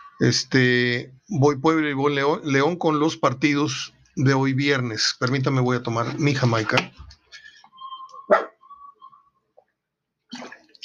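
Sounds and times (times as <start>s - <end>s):
speech: 0.2s - 7.2s
dog whining faintly on a sofa: 7.9s - 8.7s
dog barking on a sofa: 8.3s - 8.6s.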